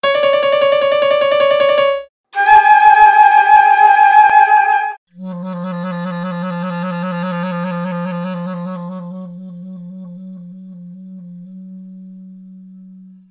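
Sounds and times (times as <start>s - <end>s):
piano notes Db and D: 0.0s - 4.9s
flute notes G and Ab: 0.0s - 13.3s.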